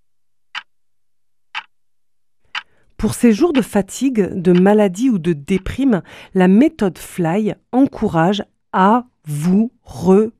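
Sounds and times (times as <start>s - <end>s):
clock ticking: 0.5s - 0.7s, 1.5s - 1.7s, 2.5s - 5.9s
speech: 3.0s - 10.3s.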